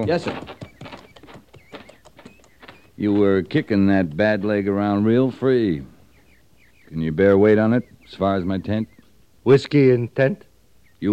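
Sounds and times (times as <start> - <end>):
speech: 0.0 - 0.5, 3.0 - 5.9, 6.9 - 11.1
pony hooves clip-clopping: 0.0 - 7.4.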